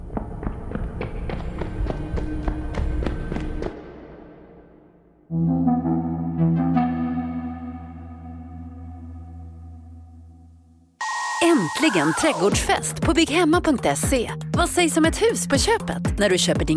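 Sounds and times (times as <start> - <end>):
heavy footsteps running along a corridor on a hard floor: 0.0 - 3.9
music: 0.0 - 16.7
speech: 11.9 - 16.7.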